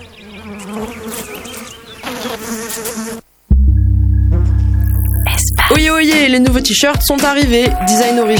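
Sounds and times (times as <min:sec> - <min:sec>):
housefly buzzing: 0:00.0 - 0:03.3, 0:04.2 - 0:06.2
steady low hum: 0:03.5 - 0:06.4
speech: 0:06.3 - 0:08.3.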